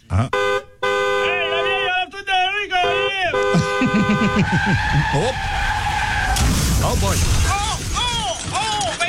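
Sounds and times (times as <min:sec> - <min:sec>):
busy Chinatown street traffic: 0:00.0 - 0:08.0
speech: 0:00.1 - 0:00.4, 0:03.8 - 0:05.8, 0:06.4 - 0:07.5
laughter: 0:03.5 - 0:05.4.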